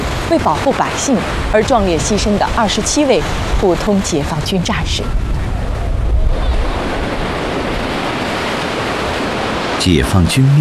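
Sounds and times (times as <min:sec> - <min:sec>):
ocean waves washing ashore: 0:00.0 - 0:10.6
wind: 0:00.0 - 0:10.6
speech: 0:00.3 - 0:05.3, 0:09.8 - 0:10.6.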